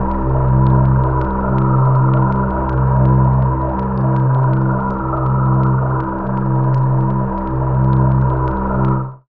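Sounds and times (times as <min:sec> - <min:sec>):
ambient alien drone: 0:00.0 - 0:09.2.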